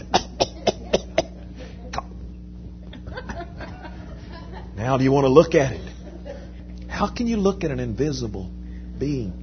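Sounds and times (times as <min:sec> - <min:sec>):
person coughing and spitting up: 0:00.0 - 0:02.2
laughter: 0:02.9 - 0:04.9, 0:05.7 - 0:06.7
speech: 0:04.8 - 0:05.9, 0:07.0 - 0:09.4.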